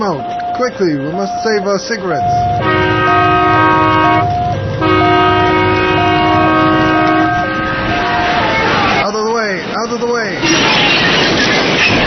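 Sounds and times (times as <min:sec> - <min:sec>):
speech: 0:00.0 - 0:03.4, 0:10.0 - 0:12.0
loud rumbling of a train on the rails: 0:02.2 - 0:12.0
long steady train horn: 0:02.5 - 0:08.5
people speaking and shouting: 0:07.7 - 0:10.8.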